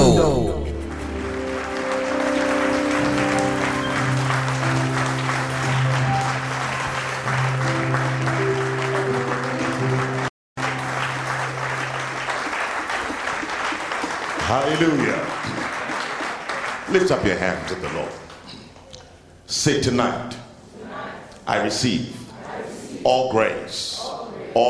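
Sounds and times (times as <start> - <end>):
sustained tone or organ chord: 0.0 - 12.8
large crowd applauding at a church conference: 0.2 - 18.6
speech: 17.0 - 18.2, 19.6 - 20.4, 21.5 - 22.2, 23.0 - 24.6.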